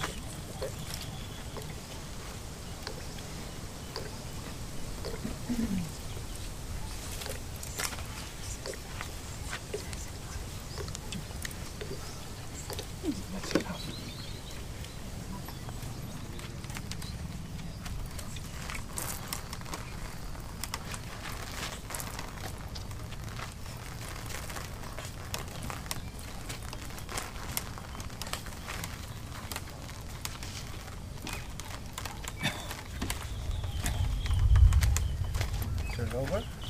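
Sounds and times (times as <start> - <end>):
steady rainfall: 0.0 - 36.6.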